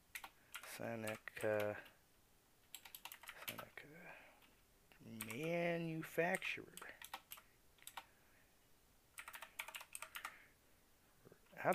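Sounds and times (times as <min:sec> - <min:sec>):
typing on a computer keyboard: 0:00.1 - 0:01.9, 0:02.7 - 0:03.7, 0:05.2 - 0:05.6, 0:06.3 - 0:08.1, 0:09.2 - 0:10.4, 0:11.6 - 0:11.7
speech: 0:00.8 - 0:01.9, 0:05.0 - 0:06.9.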